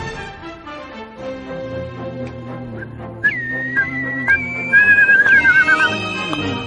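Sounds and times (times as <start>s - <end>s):
whistled tune: 2.7s - 6.6s.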